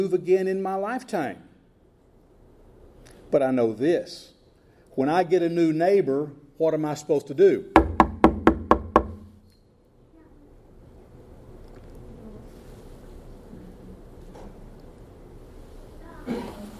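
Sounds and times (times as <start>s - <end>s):
speech: 0.0s - 1.5s, 3.3s - 4.3s, 5.0s - 7.8s
low steady hum: 0.0s - 16.7s
knocking on a door: 7.8s - 9.3s.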